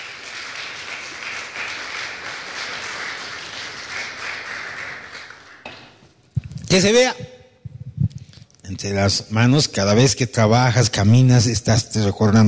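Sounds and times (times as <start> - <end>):
church audience applauding: 0.0 - 5.7
speech: 6.7 - 7.3, 8.8 - 12.4.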